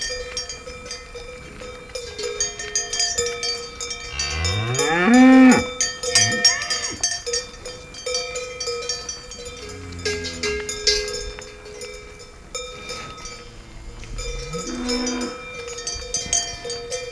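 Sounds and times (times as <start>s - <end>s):
cowbells clanking and ringing: 0.0s - 17.0s
cow mooing in a forest in Germany: 4.1s - 7.0s, 9.6s - 10.8s, 13.5s - 15.5s.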